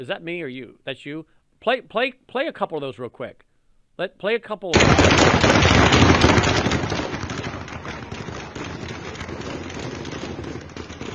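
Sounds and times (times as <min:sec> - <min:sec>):
speech: 0:00.0 - 0:05.7
thick wash of noise: 0:00.0 - 0:11.1
rapid gunfire: 0:04.8 - 0:11.1.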